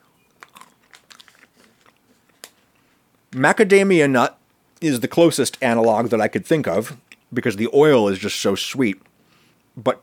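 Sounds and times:
roasted pili nuts being bitten and chewed: 0.0 - 2.8
speech: 3.3 - 9.1, 9.8 - 10.0.

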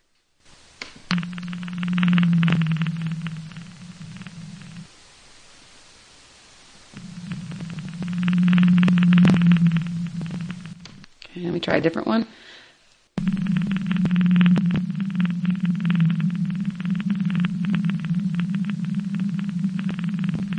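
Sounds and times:
faint hiss: 0.0 - 20.5
blue whale low-frequency moaning calls: 1.1 - 4.9, 6.9 - 11.0, 13.2 - 20.5
steady low hum: 1.1 - 6.1, 6.7 - 11.5, 13.2 - 20.5
speech: 11.6 - 12.4.

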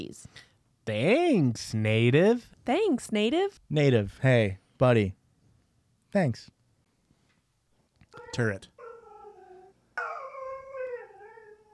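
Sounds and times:
speech: 0.0 - 5.2, 6.1 - 6.6, 8.3 - 8.7
dog whining for treats: 8.1 - 11.7.

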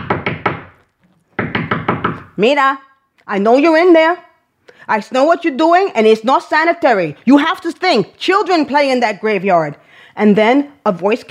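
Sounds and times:
knocking on a door: 0.0 - 0.7, 1.4 - 2.3
speech: 2.4 - 11.2.

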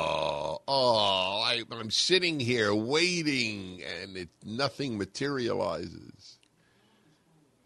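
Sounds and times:
loud drawn-out voiced yawn: 0.0 - 0.7
speech: 1.6 - 6.4.

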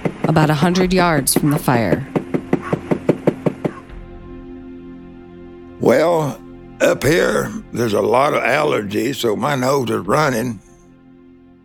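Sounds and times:
speech: 0.3 - 2.1, 5.8 - 10.6
knocking on a hollow travel trailer door: 0.9 - 4.2.

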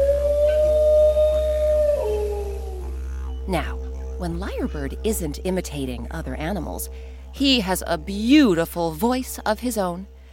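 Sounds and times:
dingo howling: 0.0 - 6.7
constant low hum: 0.0 - 10.3
speech: 3.5 - 10.2.

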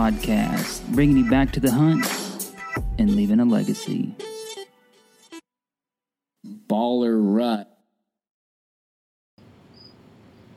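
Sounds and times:
speech: 0.0 - 2.2, 2.8 - 4.3, 6.4 - 7.7
cricket chirping in the corner of a room: 9.6 - 10.5.

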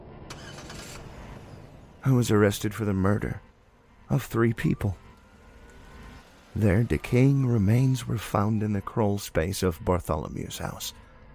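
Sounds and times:
police car engine running: 0.1 - 8.4
speech: 2.0 - 3.5, 4.1 - 5.0, 6.6 - 11.0.

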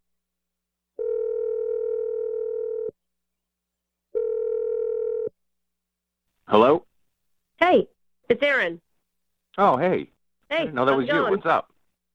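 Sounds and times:
long steady phone ringing tones: 1.0 - 2.9, 4.1 - 5.3
speech: 7.7 - 8.9, 9.6 - 11.7.

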